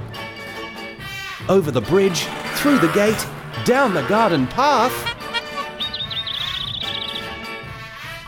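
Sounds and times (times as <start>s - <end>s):
speech: 1.5s - 5.1s
bird chirping and calling in a warbling trill: 2.4s - 7.8s.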